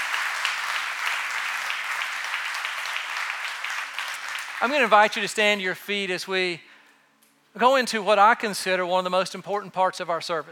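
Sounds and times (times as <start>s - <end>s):
crowd clapping: 0.0s - 5.6s
speech: 4.6s - 6.7s, 7.6s - 10.5s.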